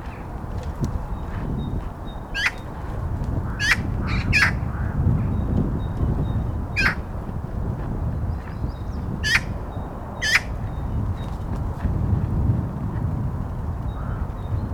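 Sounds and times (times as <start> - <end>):
low rumbling wind-like noise: 0.0 - 14.7
Eurasian magpie Pica pica chattering calls: 2.3 - 2.7, 3.5 - 4.6, 9.2 - 9.6, 10.2 - 10.5.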